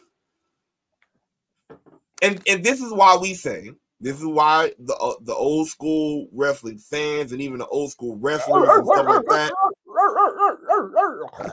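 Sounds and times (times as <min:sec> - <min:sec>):
speech: 0:01.7 - 0:11.5
dog barking: 0:08.4 - 0:11.3.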